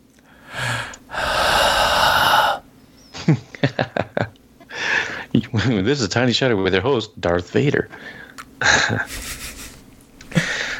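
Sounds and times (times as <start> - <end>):
exaggerated heavy breathing into a microphone: 0.2 - 2.7, 4.7 - 5.3, 10.3 - 10.7
speech: 3.3 - 3.9, 5.4 - 9.3.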